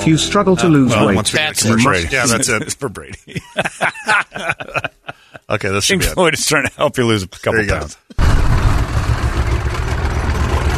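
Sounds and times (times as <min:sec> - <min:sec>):
speech: 0:00.0 - 0:08.6
laughter: 0:01.0 - 0:06.8
heavy engine rumbling: 0:08.2 - 0:10.7.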